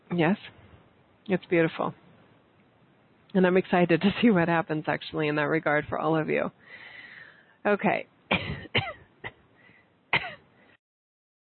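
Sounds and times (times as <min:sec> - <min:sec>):
speech: 0:00.1 - 0:00.6, 0:01.3 - 0:02.0, 0:03.3 - 0:06.9, 0:07.6 - 0:08.5
person coughing: 0:08.3 - 0:09.4, 0:10.2 - 0:10.4.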